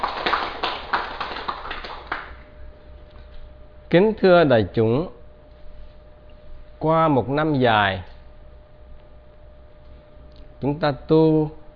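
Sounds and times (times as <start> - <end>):
audience applause: 0.0 - 2.4
speech: 3.9 - 5.2, 6.8 - 8.1, 10.6 - 11.6.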